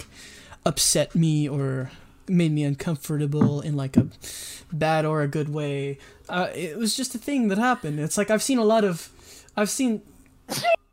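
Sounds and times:
speech: 0.0s - 10.8s
sneeze: 10.5s - 10.9s.

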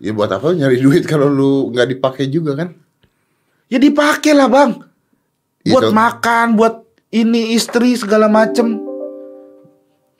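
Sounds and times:
speech: 0.0s - 2.8s, 3.7s - 4.9s, 5.6s - 8.9s
Windows computer notification chime: 7.7s - 9.8s.

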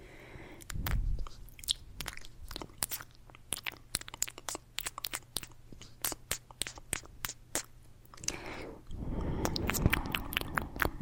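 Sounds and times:
low steady hum: 0.0s - 11.0s
crunchy chewing snaps: 0.6s - 8.4s, 9.3s - 11.0s
rapid wet mouth clicks: 0.6s - 8.5s, 9.2s - 11.0s.

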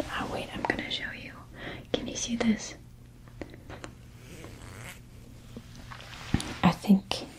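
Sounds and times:
low steady hum: 0.0s - 7.3s
speech: 2.3s - 2.8s
zippers on a crown made of zips rustling and clicking: 4.3s - 5.0s.

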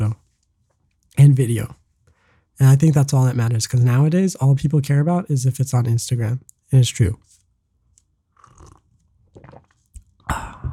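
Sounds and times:
speech: 1.2s - 1.8s, 2.6s - 7.4s
person slurping hot tea: 8.4s - 10.7s.

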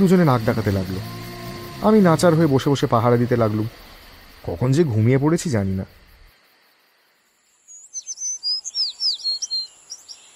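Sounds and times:
speech: 0.0s - 1.2s, 1.8s - 3.8s, 4.4s - 6.0s
bird call with bright high chirps and whistled notes: 7.8s - 10.2s.

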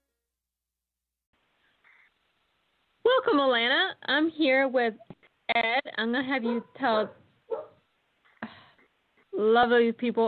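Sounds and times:
speech: 3.2s - 7.2s, 9.4s - 10.2s
dog barking: 6.4s - 7.8s.

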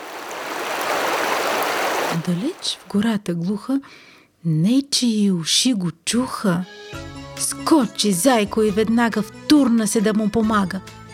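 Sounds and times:
stream water rushing: 0.0s - 2.9s
speech: 2.2s - 11.0s.

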